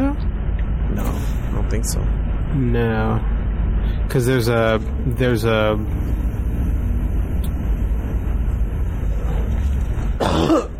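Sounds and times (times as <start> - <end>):
low rumbling background: 0.0 - 10.7
speech: 1.7 - 3.4, 4.1 - 6.2
person coughing: 10.2 - 10.7.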